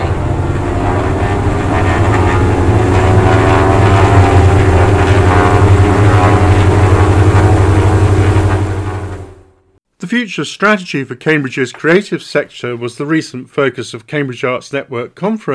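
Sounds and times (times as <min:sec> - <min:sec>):
light propeller aircraft engine running outside Hangar 1 at Cambridge: 0:00.0 - 0:09.8
speech: 0:10.1 - 0:15.5.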